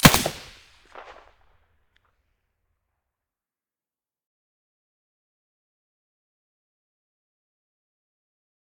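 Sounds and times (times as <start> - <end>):
gunshot through a silencer on an SA58 rifle: 0.0 - 1.2.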